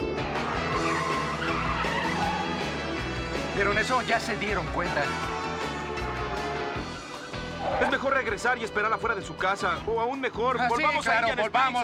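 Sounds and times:
car accelerating with engine roar: 0:00.2 - 0:08.0
car tires squealing and skidding: 0:00.3 - 0:08.3
speech: 0:03.6 - 0:05.4, 0:07.8 - 0:11.8.

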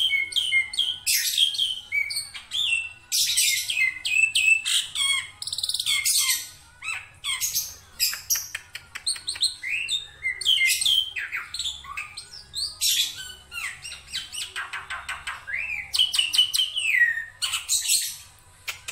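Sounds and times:
Black-winged myna singing scratchy varied song: 0:00.0 - 0:18.3.

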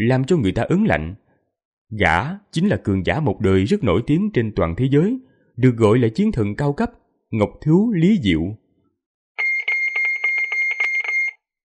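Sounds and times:
speech: 0:00.0 - 0:01.2, 0:01.9 - 0:08.6
shrill electronic alarm ringing from a wristwatch: 0:09.4 - 0:11.5.

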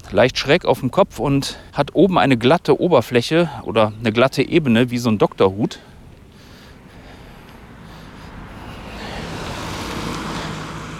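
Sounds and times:
speech: 0:00.1 - 0:05.9
car speeding past on a street: 0:06.8 - 0:10.9.

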